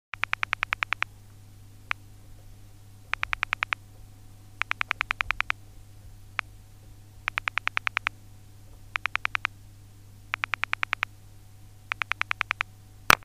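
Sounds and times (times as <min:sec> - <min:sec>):
telephone pulse dial sounds in the handset: 0:00.2 - 0:01.1, 0:03.1 - 0:03.8, 0:04.6 - 0:05.6, 0:07.3 - 0:08.1, 0:09.0 - 0:09.5, 0:10.3 - 0:11.1, 0:11.9 - 0:12.7.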